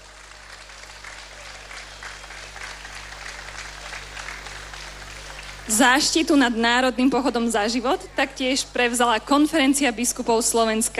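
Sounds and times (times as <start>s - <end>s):
crowd applauding: 0.0s - 6.1s
low electrical hum: 0.0s - 10.9s
speech: 5.7s - 10.9s.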